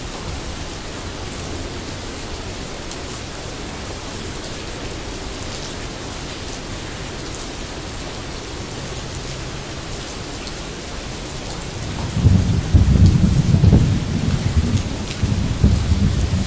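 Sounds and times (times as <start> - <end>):
light rain pattering over leaves: 0.0 - 16.4
low rumble of water or thunder: 11.8 - 16.4.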